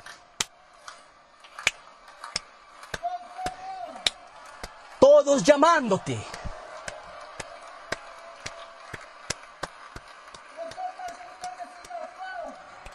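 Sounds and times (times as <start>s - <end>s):
cheers and whoops: 0.0s - 12.9s
steady evenly spaced claps: 0.0s - 12.9s
speech: 5.2s - 6.3s.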